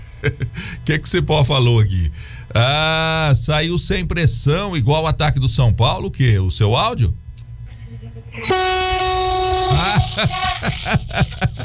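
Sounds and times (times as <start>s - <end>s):
speech: 0.2s - 7.2s, 8.4s - 9.1s, 9.8s - 11.6s
loud brassy horn blast: 8.4s - 10.6s
laughter: 9.7s - 11.6s.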